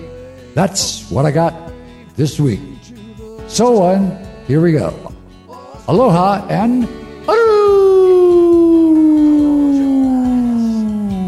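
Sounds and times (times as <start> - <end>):
speech: 0.6 - 2.7, 3.5 - 5.1, 5.9 - 7.5
dog howling: 7.3 - 11.2.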